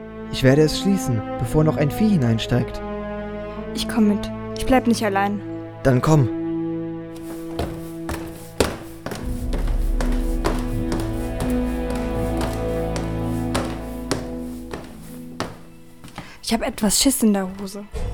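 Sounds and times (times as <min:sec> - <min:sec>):
speech: 0:00.3 - 0:02.9, 0:03.7 - 0:06.4, 0:16.5 - 0:18.0
footsteps: 0:07.2 - 0:17.9.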